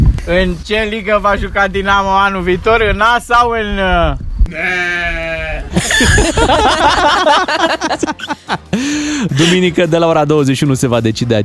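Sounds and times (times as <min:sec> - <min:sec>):
speech: 0:00.3 - 0:05.2, 0:05.8 - 0:11.4
sheep bleating at a mountain sheepfold: 0:04.5 - 0:05.7
laughter: 0:05.7 - 0:09.7.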